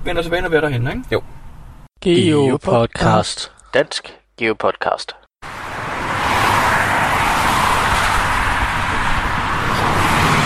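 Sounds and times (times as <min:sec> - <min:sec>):
speech: 0:00.0 - 0:01.4, 0:02.0 - 0:05.2
motorway traffic roar of tyres and engines: 0:05.4 - 0:10.4.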